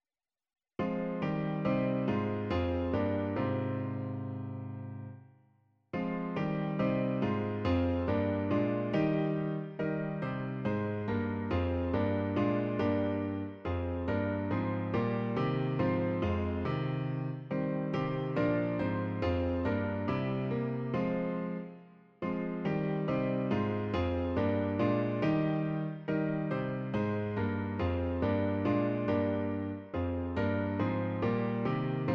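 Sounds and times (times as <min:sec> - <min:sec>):
piano playing: 0:00.8 - 0:05.2, 0:06.0 - 0:32.1.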